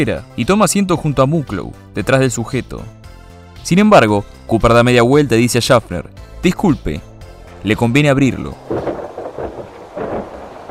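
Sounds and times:
speech: 0.0s - 3.0s, 3.6s - 9.0s
low rolling thunder: 8.6s - 10.6s
steady rush of thunderstorm rain: 8.6s - 10.6s.

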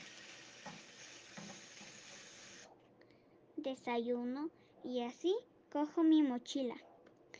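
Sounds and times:
food frying in a pan: 0.0s - 2.7s
speech: 3.6s - 6.9s.

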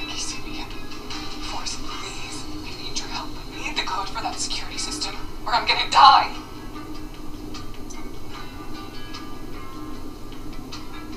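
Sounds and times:
train passing with wheels clicking over rail joints: 0.0s - 11.1s
speech: 5.5s - 6.4s.

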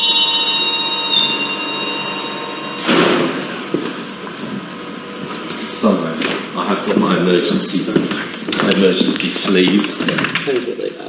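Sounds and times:
servants' bell for the back door ringing: 0.0s - 5.2s
speech: 6.9s - 11.0s.

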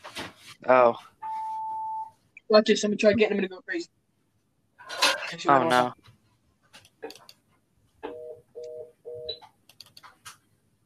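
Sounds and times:
speech: 0.6s - 1.1s, 2.5s - 4.0s, 4.9s - 6.1s
phone ringing in electronic bursts: 1.2s - 2.2s, 8.1s - 9.4s
clicks and tapping noises: 6.0s - 10.5s.

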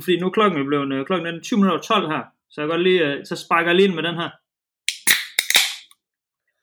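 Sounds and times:
speech: 0.0s - 4.4s
beer being opened: 4.9s - 5.9s.

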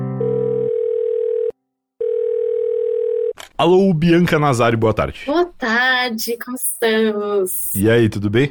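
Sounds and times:
steady mid-pitched telephone ringing tone: 0.2s - 3.4s
speech: 3.6s - 8.5s.

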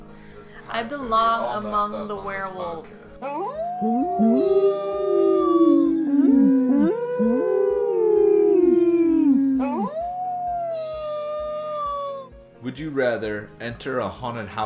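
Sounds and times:
speech: 0.7s - 5.1s, 12.7s - 14.6s
small dog howling outdoors: 3.2s - 12.3s.

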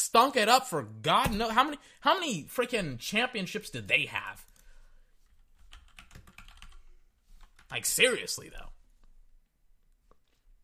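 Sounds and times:
speech: 0.1s - 4.5s, 7.7s - 8.7s
typing on a computer keyboard: 5.6s - 6.8s.

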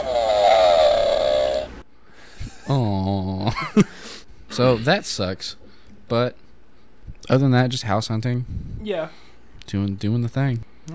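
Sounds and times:
groan sound effect played from a soundboard: 0.0s - 1.8s
speech: 2.7s - 3.0s, 4.6s - 6.4s, 7.2s - 10.9s.

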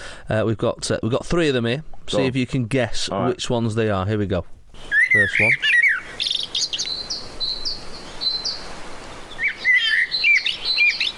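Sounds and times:
steady outdoor hiss: 0.0s - 11.1s
speech: 0.3s - 6.4s
common blackbird singing: 4.8s - 11.1s.

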